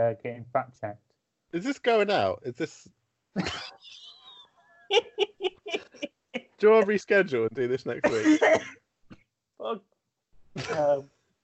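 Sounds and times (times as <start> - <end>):
speech: 0.0 - 4.0, 4.9 - 8.8, 9.6 - 9.9, 10.6 - 11.1
person coughing throatily: 3.4 - 3.8, 8.0 - 8.8, 10.6 - 11.0
laughter: 3.4 - 6.1, 6.7 - 8.6.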